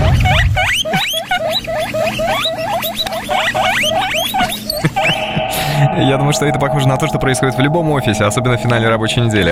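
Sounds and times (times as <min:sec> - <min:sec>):
many guinea pigs squeaking together: 0:00.0 - 0:09.5
speech: 0:06.0 - 0:09.5.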